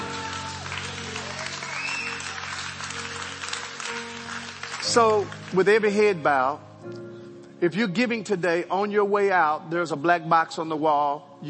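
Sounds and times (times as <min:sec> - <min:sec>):
church audience clapping: 0:00.0 - 0:06.2
speech: 0:04.9 - 0:11.4.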